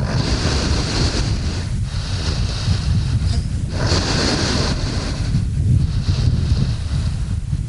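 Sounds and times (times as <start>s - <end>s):
sedated polar bear breathing on slushy sea ice in the Chukchi Sea: 0.0s - 7.6s
wind noise: 0.0s - 7.6s.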